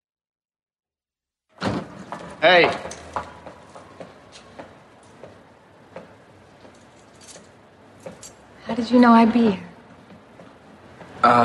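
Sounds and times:
back door opening or shutting: 1.6 - 3.5
speech: 2.4 - 2.9, 8.8 - 9.7, 11.2 - 11.4.

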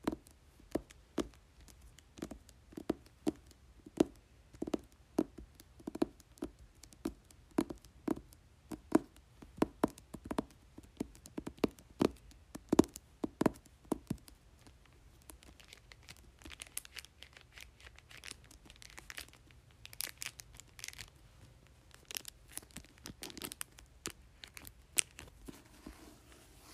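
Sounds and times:
fingers tapping on a book cover: 0.0 - 14.4
book cover crinkling: 15.5 - 21.2, 21.9 - 26.7.

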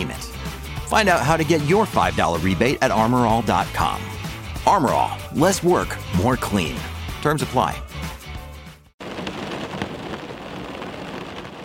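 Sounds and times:
music: 0.0 - 9.0
speech: 0.9 - 7.9
rain pattering on a car windshield: 9.0 - 11.6.

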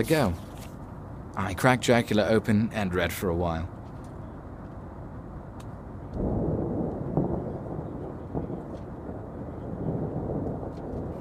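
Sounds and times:
speech: 0.0 - 0.4, 1.4 - 3.8
thunderstorm with heavy low thunder during a passenger flight: 6.1 - 11.1.

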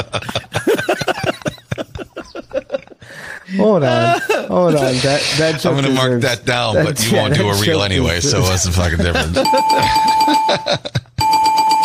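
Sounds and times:
laughter: 0.0 - 6.2, 6.8 - 11.2
speech: 3.6 - 11.0
bell ringing with bright buzzing tone: 9.3 - 11.8.

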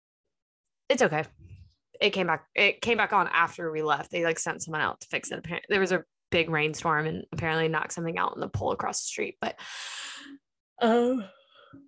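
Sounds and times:
speech: 0.9 - 11.8
person yawning: 10.8 - 11.3.

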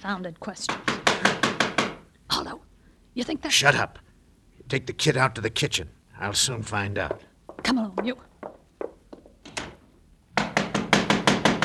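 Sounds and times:
speech: 0.0 - 1.4, 2.4 - 4.1, 4.7 - 8.3
heavy pounding on a door: 0.7 - 2.0, 7.1 - 9.8, 10.4 - 11.6.

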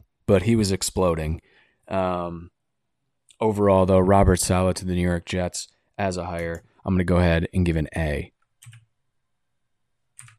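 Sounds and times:
speech: 0.3 - 2.6, 3.4 - 8.8
typing on a computer keyboard: 8.6 - 8.9, 10.2 - 10.3.

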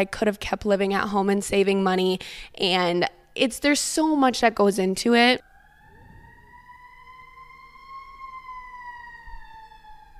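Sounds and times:
speech: 0.0 - 5.5
low traffic rumble: 5.4 - 9.2
ambulance or fire truck siren passing: 5.4 - 10.1.

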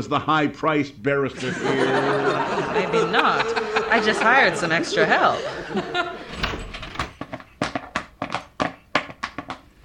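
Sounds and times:
speech: 0.0 - 6.0
laughter: 1.4 - 6.6
door swinging open with a solid thunk: 6.2 - 7.2.

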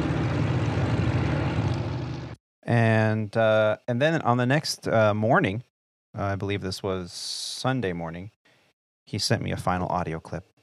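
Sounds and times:
propeller racing aircraft including Glasairs and a Thunder Mustang taxiing out at Reno air race: 0.0 - 2.4
speech: 2.7 - 8.4, 9.1 - 10.5.

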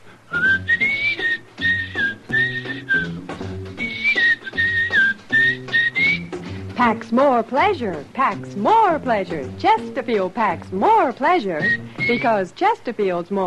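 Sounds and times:
steady pulsing instrumental backing music: 0.2 - 12.5
person whistling a bright wavering melody: 0.3 - 6.5, 11.6 - 12.4
speech: 6.8 - 13.4.

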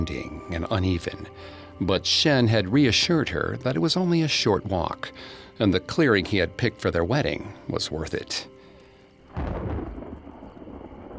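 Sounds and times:
speech: 0.0 - 8.5
thunder crack and rumble: 9.3 - 11.1.

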